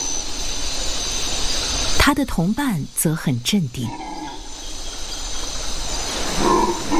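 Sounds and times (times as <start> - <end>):
rainforest ambience: 0.0 - 6.9
speech: 2.0 - 4.0
howler monkeys roaring: 3.8 - 4.6, 6.0 - 6.9.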